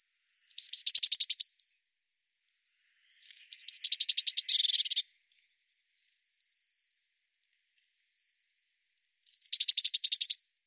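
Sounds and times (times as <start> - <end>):
Eurasian blue tit calls: 0.5 - 1.7, 3.2 - 5.0, 9.2 - 10.4.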